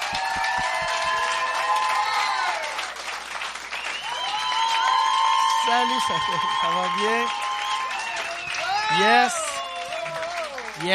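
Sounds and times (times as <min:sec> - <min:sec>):
large audience clapping: 0:00.0 - 0:10.9
audience whistles: 0:03.7 - 0:10.2
speech: 0:05.7 - 0:07.4, 0:08.9 - 0:09.4, 0:10.8 - 0:10.9.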